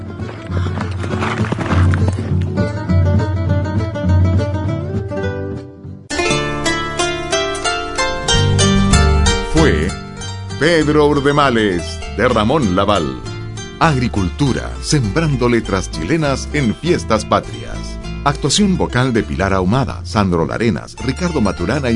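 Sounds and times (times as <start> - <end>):
horse galloping with a fleeing rider: 0.0 - 4.5
loud lively musical backing: 0.0 - 21.9
speech: 10.6 - 21.9.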